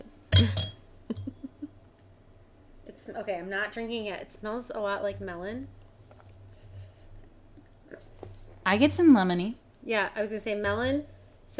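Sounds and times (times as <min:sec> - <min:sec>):
low hum: 0:00.0 - 0:11.5
drinking glasses clinking in a toast: 0:00.3 - 0:01.3
speech: 0:00.4 - 0:00.6, 0:03.2 - 0:05.8, 0:08.7 - 0:11.5.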